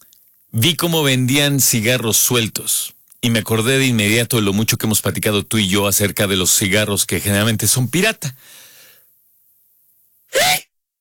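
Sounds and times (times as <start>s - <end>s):
speech: 0.5s - 8.6s
sneeze: 10.3s - 10.7s.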